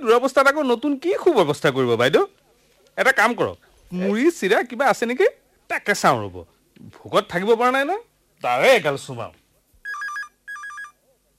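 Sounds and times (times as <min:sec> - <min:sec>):
speech: 0:00.0 - 0:02.4, 0:03.0 - 0:09.4
telephone ringing with warbling electronic trill: 0:09.8 - 0:11.0.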